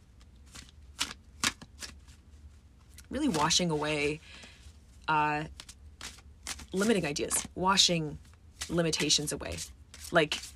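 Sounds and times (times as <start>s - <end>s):
oracle cards shuffled by hand: 0.2s - 2.2s, 3.0s - 3.9s, 5.5s - 7.5s, 8.2s - 10.5s
speech: 3.1s - 4.5s, 5.1s - 5.6s, 6.7s - 10.5s.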